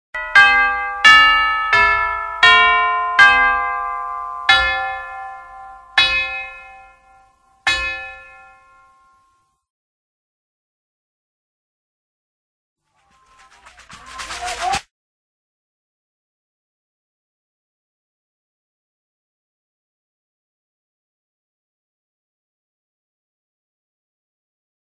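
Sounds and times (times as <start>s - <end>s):
tubular bells: 0.2s - 9.4s.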